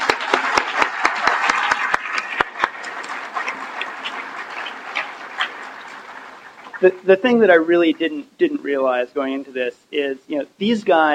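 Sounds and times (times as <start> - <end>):
sharp evenly spaced claps: 0.0 - 6.8
round of applause: 0.0 - 6.9
speech: 6.8 - 11.1.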